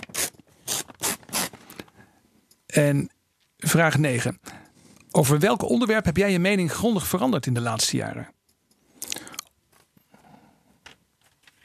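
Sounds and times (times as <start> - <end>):
paper envelope holding a question card being torn open: 0.0 - 1.8
speech: 2.8 - 4.5, 5.2 - 8.4.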